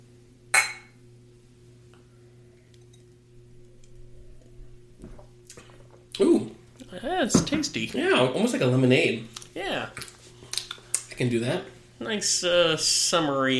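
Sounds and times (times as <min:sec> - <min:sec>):
low room hum: 0:00.0 - 0:08.4
glasses clinking in a toast: 0:00.6 - 0:01.0
speech: 0:06.2 - 0:10.1, 0:11.2 - 0:13.5.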